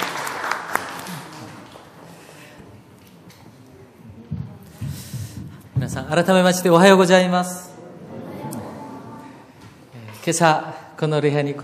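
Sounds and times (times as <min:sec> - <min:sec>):
audience at a church worship service applauding: 0:00.0 - 0:02.0
speech: 0:05.8 - 0:07.6, 0:10.3 - 0:11.6.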